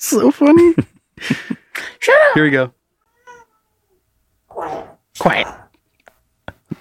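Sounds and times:
speech: 0.0s - 2.8s, 4.6s - 5.6s
cat meowing: 3.0s - 5.7s.

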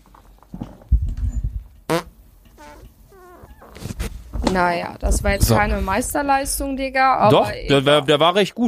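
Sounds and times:
loud low rumbling fart against the microphone: 1.9s - 4.2s
speech: 4.5s - 8.6s.

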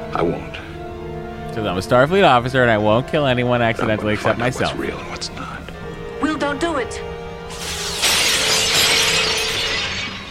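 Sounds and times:
speech: 0.2s - 0.6s, 1.6s - 5.4s, 6.9s - 7.2s
glass shattering with shards tinkling: 7.5s - 10.3s.

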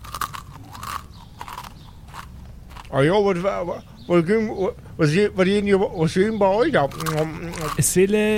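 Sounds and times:
chewing crunchy muesli from a bowl: 0.0s - 4.1s, 6.7s - 8.2s
speech: 2.9s - 8.3s.

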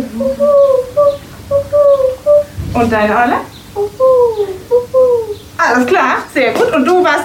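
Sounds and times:
child imitating owl hoots with the mouth: 0.0s - 2.6s, 3.7s - 5.5s
speech: 2.8s - 3.5s, 5.6s - 7.2s.

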